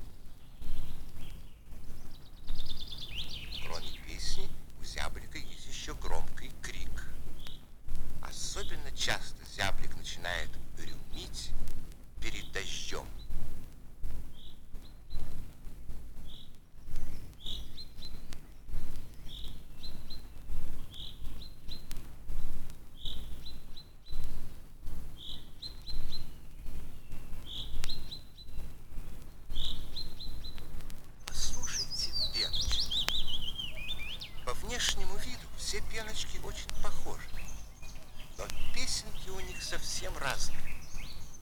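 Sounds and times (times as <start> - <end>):
common chaffinch singing: 0.0 - 15.5, 16.2 - 41.4
faint constant low hum: 0.0 - 41.4
speech: 35.8 - 37.3, 39.6 - 40.6.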